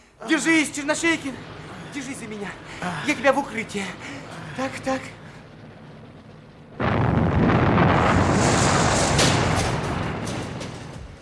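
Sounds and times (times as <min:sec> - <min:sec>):
speech: 0:00.2 - 0:05.2
shell exploding as it hits a field gun: 0:06.8 - 0:11.1.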